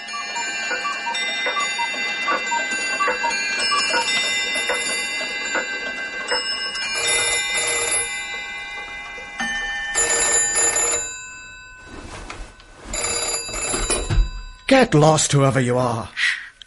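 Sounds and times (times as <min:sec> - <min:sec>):
cuckoo clock calls: 0:00.0 - 0:08.1
clock ticking: 0:00.0 - 0:09.3
clock bells ringing: 0:00.0 - 0:15.6
speech: 0:14.7 - 0:16.2.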